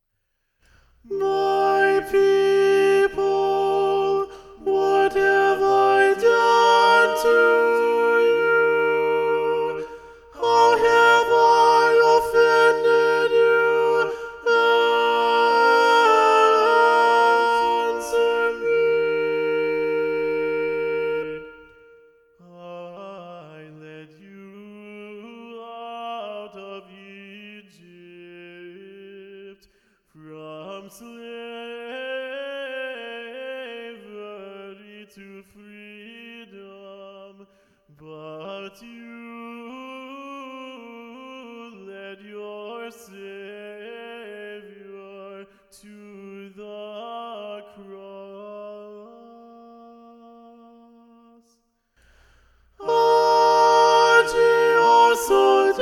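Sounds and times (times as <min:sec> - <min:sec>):
SATB choir singing with soprano predominant: 0:01.1 - 0:22.0, 0:52.8 - 0:55.8.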